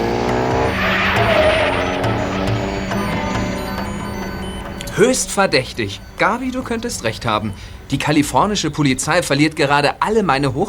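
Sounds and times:
car engine revving: 0.0s - 6.4s
car tires squealing: 0.0s - 7.1s
speech: 5.0s - 10.6s.

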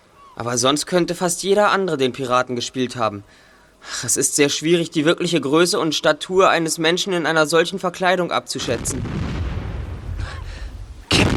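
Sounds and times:
speech: 0.4s - 9.4s
ship cannons firing: 8.6s - 11.3s.

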